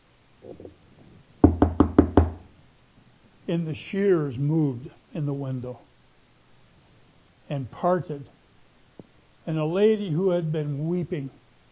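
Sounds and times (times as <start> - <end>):
speech: 0.4 - 1.0, 3.5 - 5.9, 7.5 - 8.4, 9.5 - 11.4
firm knocking on a door: 1.4 - 2.5.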